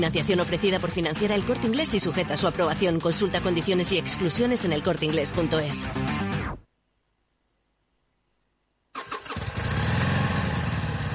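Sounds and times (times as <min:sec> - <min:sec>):
speech: 0:00.0 - 0:06.4
motorcycle engine cutting off, starting and revving: 0:09.0 - 0:11.1.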